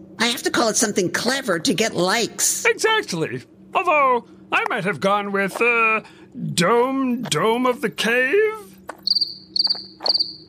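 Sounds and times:
speech: 0.2 - 8.6, 9.7 - 10.4
crickets chirping: 8.9 - 10.4.

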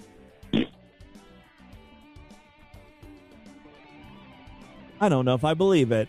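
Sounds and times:
fart sound made by a caller over the phone line: 0.5 - 0.8
speech: 5.0 - 6.0.

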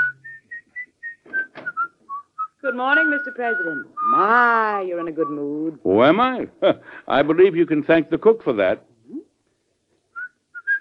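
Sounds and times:
person whistling a short tune: 0.0 - 4.4, 10.2 - 10.7
speech: 2.7 - 8.9.

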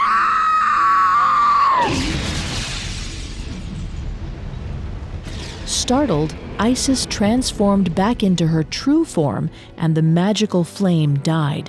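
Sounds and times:
woman screaming in horror: 0.0 - 2.0
speech: 5.9 - 11.6.

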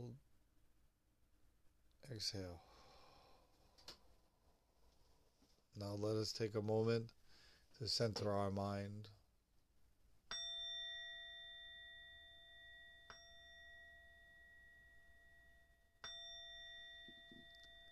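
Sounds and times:
speech: 0.0 - 0.2, 2.1 - 2.7, 5.8 - 7.2, 7.8 - 9.2
meditation bell ringing: 10.3 - 17.9.

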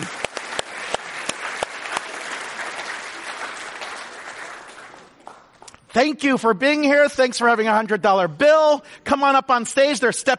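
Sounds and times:
audience applauding: 0.0 - 5.8
speech: 6.0 - 10.3.

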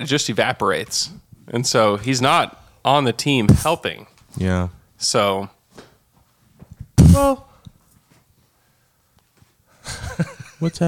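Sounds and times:
speech: 0.0 - 5.6, 7.1 - 7.5, 9.9 - 10.8
person blowing nose: 7.0 - 7.6.

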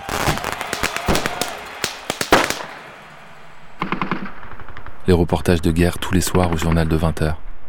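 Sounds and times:
firecrackers popping and banging: 0.0 - 5.4
speech: 5.1 - 7.5.

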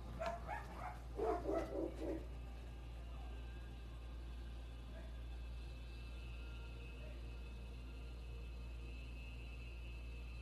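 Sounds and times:
steady low hum: 0.0 - 10.3
small dog of about 15 pounds barking at a larger dog: 0.2 - 2.3.

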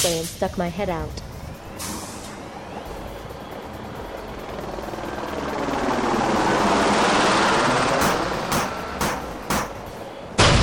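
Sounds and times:
speech: 0.0 - 1.2
helicopter gunship circling overhead: 1.6 - 10.4
sharp evenly spaced bursts: 3.2 - 10.0.

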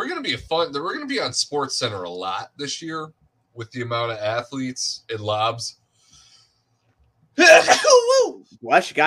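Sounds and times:
speech: 0.2 - 5.8, 7.4 - 9.0
person sneezing: 7.4 - 8.2.

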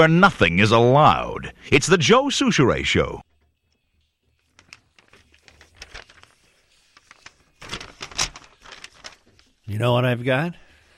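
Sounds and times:
speech: 0.0 - 3.3, 9.7 - 10.6
blue sheet of paper rustling and crinkling: 3.7 - 9.8.

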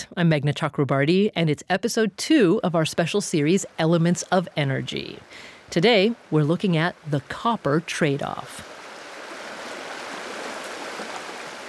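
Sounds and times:
speech: 0.1 - 8.7
Stillwater River water flowing in southern Montana: 3.1 - 11.6.

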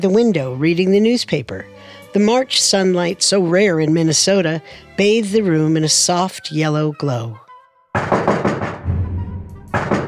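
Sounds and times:
speech: 0.0 - 7.4, 8.0 - 8.4
firm knocking on a door: 8.0 - 10.0.

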